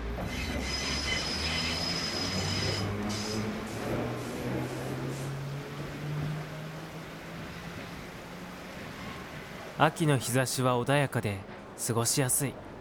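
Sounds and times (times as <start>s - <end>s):
trams rolling past on rails: 0.0s - 12.8s
metallic tram wheel squeal on rails: 0.2s - 3.4s
speech: 9.8s - 12.7s.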